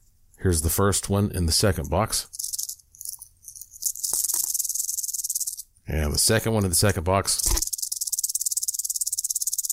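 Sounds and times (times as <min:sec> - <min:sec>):
speech: 0:00.4 - 0:02.4, 0:05.9 - 0:07.7
detached rattlesnake rattle being shaken: 0:02.2 - 0:05.7, 0:07.3 - 0:09.7.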